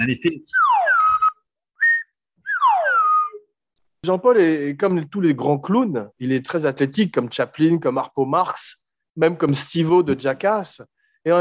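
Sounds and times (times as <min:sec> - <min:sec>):
speech: 0:00.0 - 0:00.6, 0:04.0 - 0:11.3
slide whistle swooping downward: 0:00.5 - 0:03.5.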